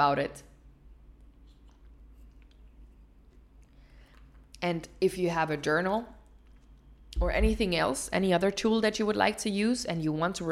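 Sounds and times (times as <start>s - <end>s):
speech: 0.0s - 0.5s, 4.6s - 6.2s, 7.1s - 10.5s
low steady hum: 0.0s - 10.5s
person sipping a cocoa drink: 1.2s - 4.6s.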